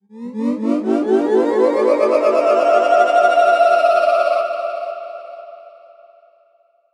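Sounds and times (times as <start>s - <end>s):
magical pulsating ascending tone: 0.1s - 5.7s.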